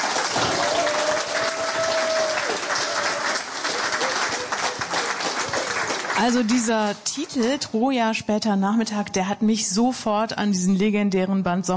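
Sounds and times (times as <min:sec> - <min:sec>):
audience applauding a novelist: 0:00.0 - 0:07.3
speech: 0:06.2 - 0:11.7.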